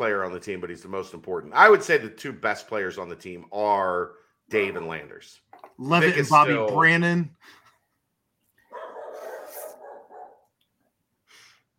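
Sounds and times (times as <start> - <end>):
speech: 0.0 - 7.6
dogs barking: 8.7 - 10.5.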